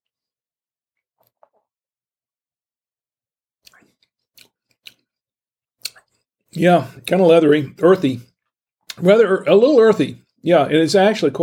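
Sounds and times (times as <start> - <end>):
person sipping wine: 3.6 - 5.1
wet slurps and lip smacks while sipping wine: 3.6 - 5.1, 5.8 - 6.3
speech: 6.6 - 8.3, 9.0 - 11.4.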